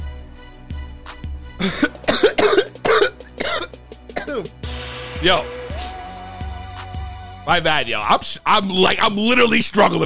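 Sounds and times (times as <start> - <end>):
speech: 1.6 - 2.0, 5.2 - 5.6, 7.4 - 10.0
person coughing after smoking cannabis: 1.6 - 4.5.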